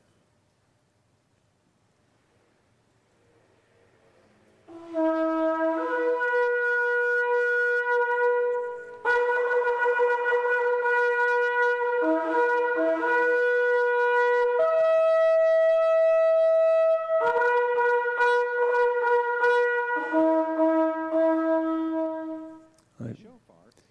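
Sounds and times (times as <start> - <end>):
shofar ram's horn blasts: 4.6 - 22.8.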